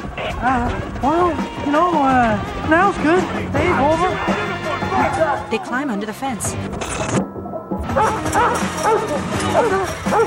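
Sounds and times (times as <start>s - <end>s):
speech: 0.4s - 4.4s, 5.0s - 7.2s, 7.9s - 10.2s
dog in a yard barking and yipping: 7.8s - 10.2s
short whimpering yelps: 8.0s - 10.2s.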